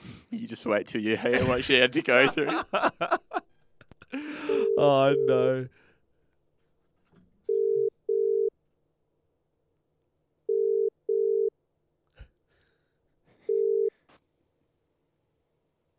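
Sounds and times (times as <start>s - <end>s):
speech: 0.3s - 3.3s, 4.8s - 5.8s
laughter: 1.0s - 4.7s
telephone ringback tone while calling someone: 4.5s - 5.5s, 7.5s - 8.5s, 10.5s - 11.5s, 13.5s - 13.9s.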